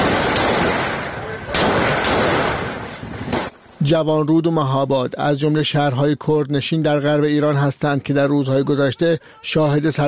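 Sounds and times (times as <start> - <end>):
sharp gunshots: 0.0 - 3.6
speech: 3.8 - 10.0.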